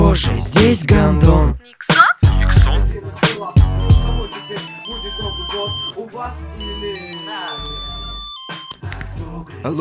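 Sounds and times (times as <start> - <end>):
speech: 0.2 - 2.1, 3.1 - 7.9, 9.2 - 9.7
musical electronic phone ringtone with deep bass: 3.7 - 6.0, 6.6 - 8.9.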